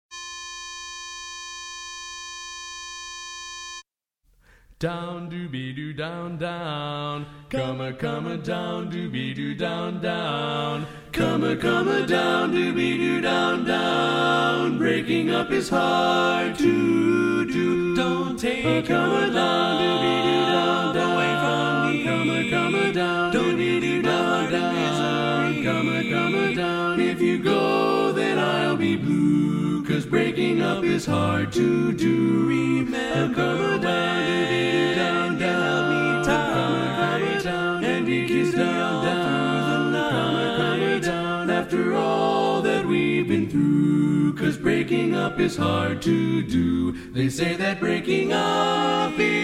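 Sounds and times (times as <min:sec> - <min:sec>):
tenor voice singing learning track: 0:04.8 - 0:49.4.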